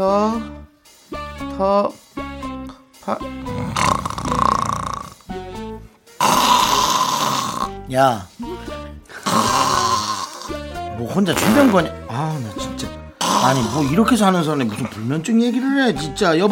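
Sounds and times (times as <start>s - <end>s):
speech: 0.0s - 0.6s, 1.6s - 2.0s, 3.1s - 4.4s, 7.9s - 8.4s, 11.0s - 16.5s
person snoring while asleep: 3.4s - 5.5s, 6.2s - 7.8s, 9.1s - 10.7s, 11.3s - 12.0s, 13.2s - 15.0s.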